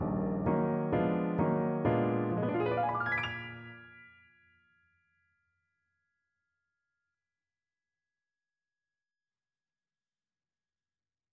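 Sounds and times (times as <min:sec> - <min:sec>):
jazz standard played on piano: 0:00.0 - 0:04.2.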